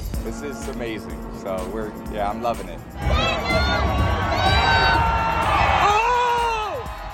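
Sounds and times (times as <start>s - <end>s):
speech: 0.2s - 5.1s
loud cheering outdoor parade crowd with shouts and whoops: 2.9s - 7.1s
young girl yelling a long drawn-out cry: 3.1s - 5.0s.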